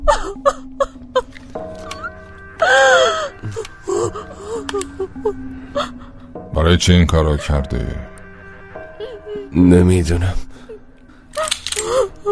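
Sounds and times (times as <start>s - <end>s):
person gasping, whimpering and wailing crying with sobs: 0.0s - 6.4s, 8.9s - 12.2s
speech: 6.7s - 8.0s, 9.5s - 10.4s.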